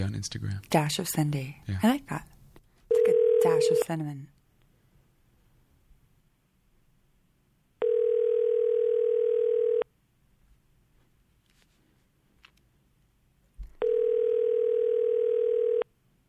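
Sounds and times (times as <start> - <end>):
speech: 0.0 - 2.3, 3.4 - 4.4
telephone ringback tone while a call is placed: 2.9 - 3.9, 7.8 - 9.8, 13.8 - 15.9.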